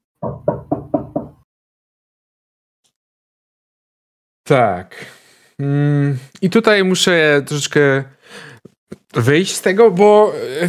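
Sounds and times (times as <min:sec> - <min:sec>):
firm knocks on an apartment door in a student dormitory: 0:00.2 - 0:01.4
speech: 0:04.5 - 0:08.5, 0:09.1 - 0:10.6.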